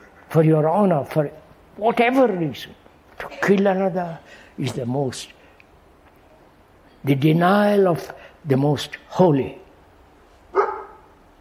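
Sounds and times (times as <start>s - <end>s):
speech: 0.3s - 5.4s, 7.0s - 9.6s
dog barking: 10.5s - 11.1s.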